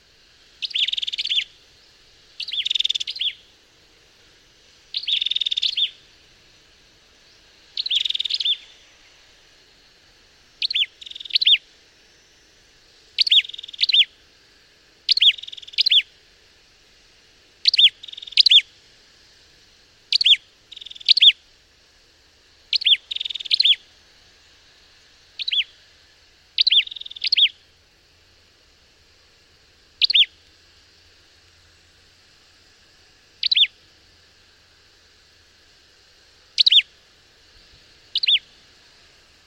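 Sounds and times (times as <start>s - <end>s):
Ashy tailorbird calling in Malaysia: 0.6s - 1.6s, 2.4s - 3.5s, 4.9s - 6.0s, 7.3s - 8.9s, 10.6s - 11.6s, 13.2s - 14.1s, 15.1s - 16.1s, 20.1s - 21.4s, 22.7s - 23.8s, 25.4s - 25.7s, 26.6s - 27.6s, 30.0s - 30.4s, 33.4s - 33.7s, 36.6s - 36.9s, 38.1s - 38.5s.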